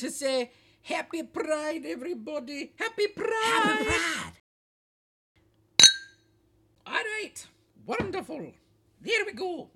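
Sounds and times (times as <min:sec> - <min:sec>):
speech: 0:00.0 - 0:04.4, 0:06.9 - 0:09.7
sherry glasses clinking in a toast: 0:05.8 - 0:06.2.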